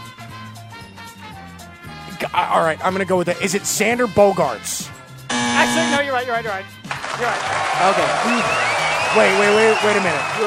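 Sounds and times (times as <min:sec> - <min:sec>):
speech: 0:02.2 - 0:05.0, 0:05.7 - 0:10.4
loud harsh game show buzzer: 0:05.3 - 0:06.2.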